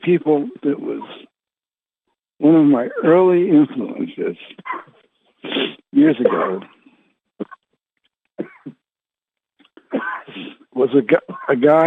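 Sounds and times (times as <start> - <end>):
speech: 0.0 - 1.2, 2.4 - 6.8, 10.0 - 11.8
person coughing during an online group meditation session: 6.2 - 6.7, 8.4 - 8.8, 9.8 - 10.5, 11.3 - 11.6.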